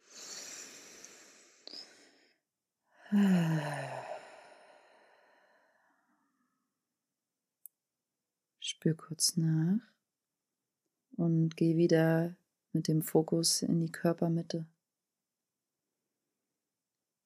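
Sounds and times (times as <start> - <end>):
long exhale with low voiced sigh: 0.0 - 2.3, 3.0 - 6.0
deep breath inhale during a guided relaxation exercise: 0.0 - 6.2
speech: 3.1 - 3.9, 8.8 - 10.0, 11.2 - 14.7.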